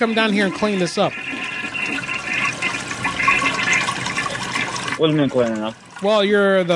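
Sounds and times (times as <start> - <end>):
speech: 0.0 - 1.4, 5.0 - 6.7
clogged overflowing toilet flushing with swirling water: 0.0 - 6.7.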